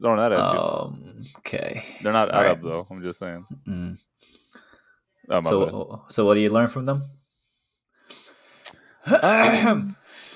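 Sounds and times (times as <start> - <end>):
speech: 0.0 - 4.1, 5.3 - 7.2, 9.0 - 10.0
person clearing throat into a microphone: 9.1 - 10.0.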